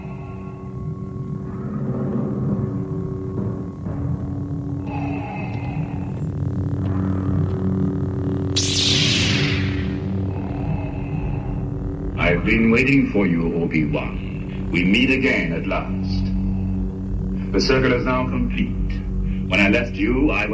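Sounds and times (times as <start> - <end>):
lightsaber hum sound effect from a film clip: 0.0 - 20.5
lightsaber swoosh: 8.6 - 10.1
speech: 12.4 - 16.1, 17.6 - 18.8, 19.5 - 20.5.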